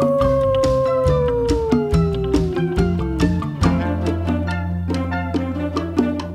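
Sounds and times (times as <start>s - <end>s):
animal howling: 0.0s - 3.9s
bouncy music with a steady beat and bright plucked notes: 0.0s - 6.3s.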